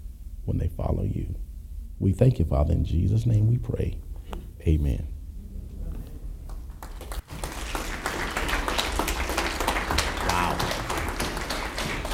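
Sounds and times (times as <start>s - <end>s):
speech: 0.5s - 5.1s
crowd applauding after prayer: 6.5s - 12.1s.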